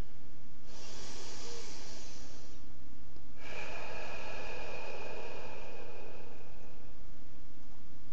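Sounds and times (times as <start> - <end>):
slow deep breathing: 0.0 - 7.8.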